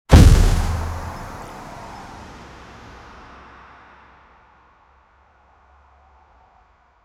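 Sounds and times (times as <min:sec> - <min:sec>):
car hit collision: 0:00.1 - 0:01.7.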